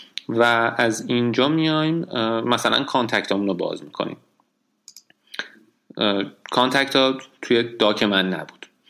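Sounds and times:
speech: 0.3 - 4.3, 6.0 - 8.6
computer mouse clicks: 4.9 - 5.2.

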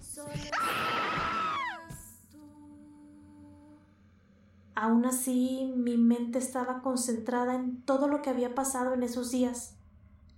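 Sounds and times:
muffled stifled scream: 0.5 - 1.9
speech: 4.8 - 9.8.

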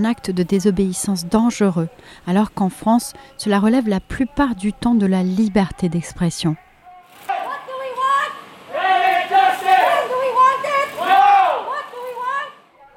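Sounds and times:
speech: 0.0 - 6.7
crowd chanting at a climate protest: 7.3 - 12.9.

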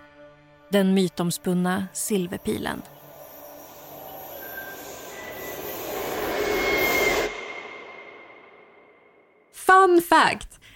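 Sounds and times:
speech: 0.7 - 3.0, 9.9 - 10.5
metro train rumbling along tracks: 2.2 - 8.9
metro train wheels squealing: 2.8 - 8.4.

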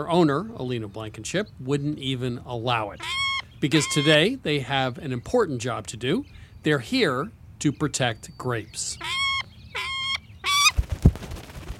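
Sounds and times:
speech: 0.0 - 9.2
falcon calling: 2.6 - 4.5, 8.3 - 10.8.

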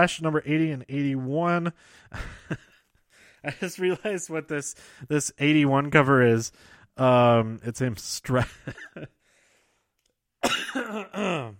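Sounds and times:
speech: 0.0 - 2.7, 3.4 - 9.2, 10.5 - 11.5
person coughing: 10.4 - 11.5.

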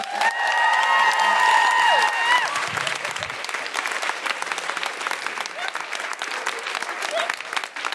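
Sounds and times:
whoops and cheers: 0.0 - 3.3
audience applause: 0.0 - 7.9.

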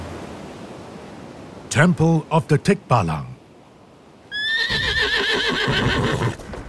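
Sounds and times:
speech: 1.8 - 3.3
horse neighing: 4.3 - 6.4.

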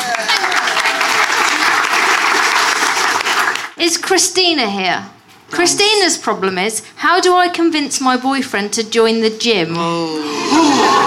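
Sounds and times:
crowd applauding: 0.0 - 3.8
speech: 3.8 - 11.0.

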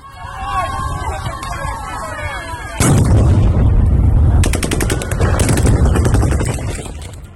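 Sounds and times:
people shouting in chaotic commotion: 0.0 - 3.0, 4.4 - 6.5
crowd noise at a street protest: 0.0 - 7.3
rapid gunshots from troops firing on protesters: 4.4 - 7.3.

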